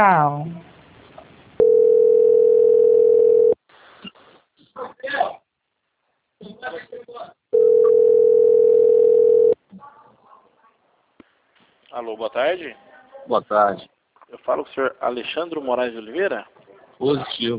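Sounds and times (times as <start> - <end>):
speech: 0.0 - 0.7, 12.0 - 17.5
steady mid-pitched telephone line tone during a bank call transfer: 1.6 - 3.6, 7.6 - 9.6.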